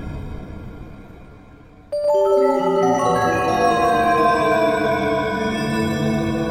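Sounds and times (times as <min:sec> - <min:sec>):
bell ringing: 0:02.0 - 0:06.4.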